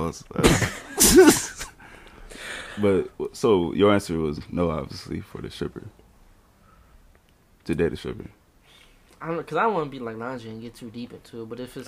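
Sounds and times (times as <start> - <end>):
speech: 0.0 - 1.4, 2.8 - 6.0, 7.7 - 8.4, 9.2 - 11.8
person coughing: 0.4 - 1.8
soft exhale: 8.6 - 9.1.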